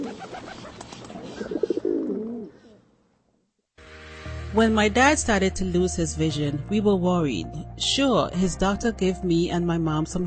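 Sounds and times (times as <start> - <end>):
pigeon cooing: 0.0 - 2.9
speech: 4.6 - 10.2.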